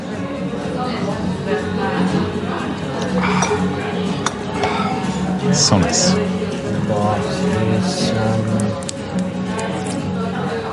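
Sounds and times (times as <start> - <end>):
murmur of voices: 0.0 - 10.7
glasses clinking in a toast: 3.0 - 5.3
speech: 5.6 - 9.3.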